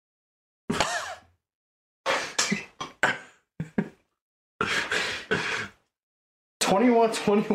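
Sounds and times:
person coughing harshly: 0:00.7 - 0:01.3, 0:02.1 - 0:03.9, 0:04.6 - 0:05.7
speech: 0:06.7 - 0:07.5.

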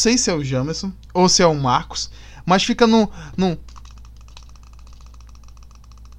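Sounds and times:
speech: 0:00.0 - 0:03.8
constant low hum: 0:00.0 - 0:06.1
computer mouse clicking: 0:03.6 - 0:06.1.

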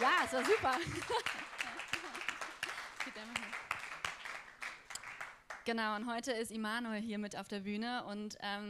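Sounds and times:
laughter: 0:00.0 - 0:03.2
audience applause: 0:00.0 - 0:05.6
speech: 0:00.3 - 0:01.5, 0:05.7 - 0:08.6.

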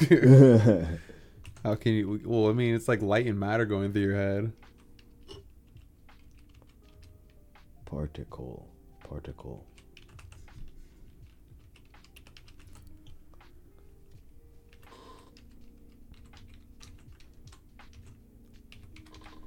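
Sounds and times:
laughter: 0:00.0 - 0:01.0
speech: 0:00.0 - 0:01.0, 0:01.6 - 0:04.7, 0:07.9 - 0:09.7
computer keyboard typing: 0:01.4 - 0:01.8, 0:04.6 - 0:07.4, 0:09.6 - 0:13.5, 0:14.6 - 0:19.4.

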